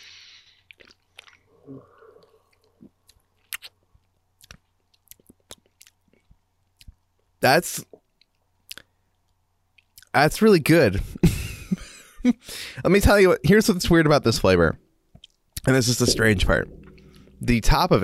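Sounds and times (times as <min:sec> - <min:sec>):
chewing a flavored chicken wing: 0:00.6 - 0:01.6, 0:02.2 - 0:07.0
speech: 0:01.7 - 0:01.9, 0:07.4 - 0:08.0, 0:10.2 - 0:11.3, 0:12.2 - 0:14.8, 0:15.6 - 0:16.8, 0:17.4 - 0:18.0.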